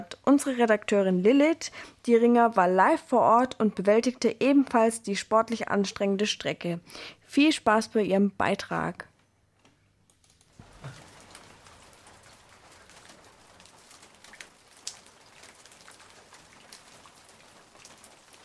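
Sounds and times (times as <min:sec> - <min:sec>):
steady rain pattering in a wet forest: 0:00.0 - 0:06.6, 0:10.0 - 0:18.4
speech: 0:00.0 - 0:09.1
rain drops tapping leaves: 0:10.1 - 0:18.4
water dripping from trees and a raincoat in a wet forest: 0:10.1 - 0:18.4.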